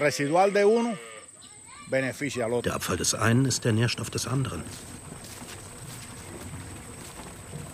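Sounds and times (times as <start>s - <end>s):
speech: 0.0s - 1.1s, 1.9s - 5.1s
cow mooing on a farm: 0.0s - 1.3s.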